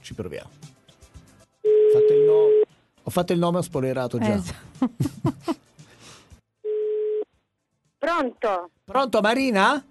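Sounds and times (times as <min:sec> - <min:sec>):
speech: 0:00.1 - 0:00.7, 0:01.9 - 0:02.5, 0:03.1 - 0:05.6, 0:08.2 - 0:09.9
telephone ringing tone during a call: 0:01.6 - 0:02.6, 0:06.6 - 0:07.3.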